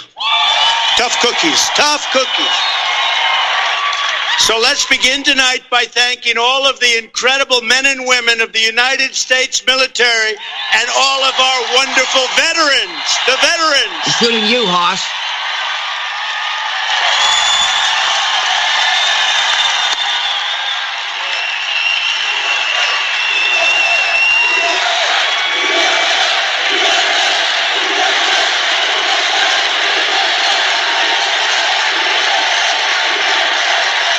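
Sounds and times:
huge crowd cheering wildly with shouts: 0.0s - 5.6s, 9.7s - 34.1s
speech: 1.0s - 2.8s, 4.4s - 15.2s
whistles from crowd: 2.0s - 4.4s, 17.0s - 26.2s.

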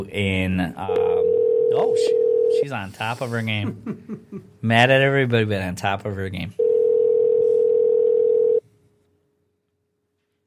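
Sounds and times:
speech: 0.0s - 6.6s
telephone dial tone while a call is placed: 1.2s - 2.5s, 6.6s - 8.6s.

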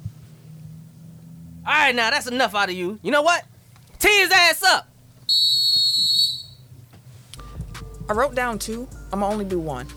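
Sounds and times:
faint low rumble of noise: 0.0s - 9.9s
speech: 1.6s - 5.6s, 8.1s - 9.9s
shrill steady whistle blast: 5.3s - 6.6s.

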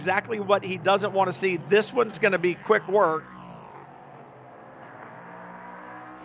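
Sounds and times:
speech: 0.0s - 3.4s
prototype race car engine roaring at high revs accelerating past: 0.0s - 6.2s.

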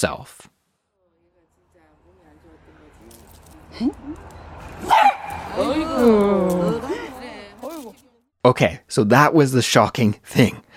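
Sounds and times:
speech: 0.0s - 0.5s, 3.8s - 6.6s, 8.4s - 10.6s
laughter: 3.6s - 4.6s, 5.3s - 8.0s
dog barking: 4.8s - 5.5s
dog yowling: 4.8s - 7.1s.

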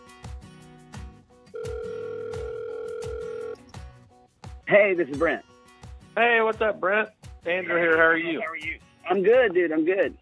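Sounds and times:
telephone ring tone: 1.5s - 3.6s
speech: 4.7s - 5.5s, 6.2s - 10.2s.

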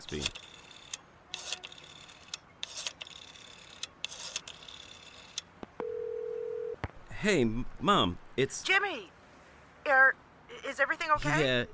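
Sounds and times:
speech: 0.0s - 0.4s, 7.2s - 9.2s, 9.9s - 11.7s
telephone dial tone: 5.8s - 6.8s.

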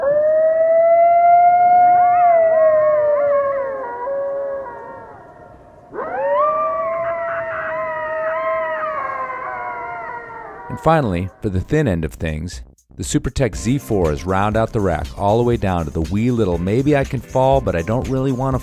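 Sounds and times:
coyote howling: 0.0s - 11.4s
speech: 10.8s - 18.6s.

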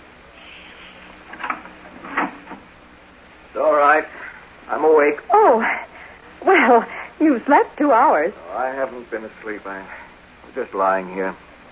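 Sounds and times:
faint hiss: 0.0s - 11.7s
door eased open slowly and quietly: 1.2s - 2.6s
speech: 7.2s - 10.0s, 10.6s - 11.5s.

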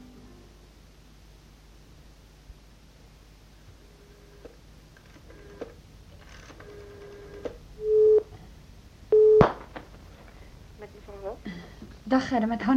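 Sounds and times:
hum: 0.0s - 12.7s
telephone beeping tones through a handset: 6.6s - 8.3s, 9.1s - 9.5s
speech: 11.2s - 12.7s.

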